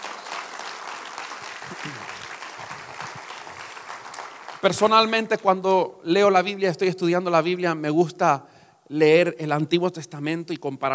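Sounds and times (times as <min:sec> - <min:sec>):
audience applauding: 0:00.0 - 0:05.2
speech: 0:01.8 - 0:02.2, 0:04.6 - 0:10.9.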